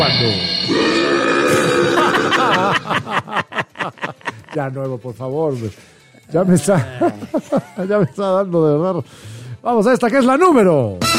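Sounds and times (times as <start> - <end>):
speech: 0.1 - 1.4, 4.5 - 11.1
long loud drawn-out burp: 0.5 - 3.0
person chuckling: 1.5 - 4.6.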